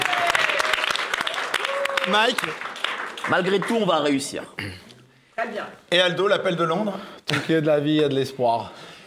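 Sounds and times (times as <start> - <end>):
crowd applauding: 0.0 - 4.3
speech: 2.1 - 8.8.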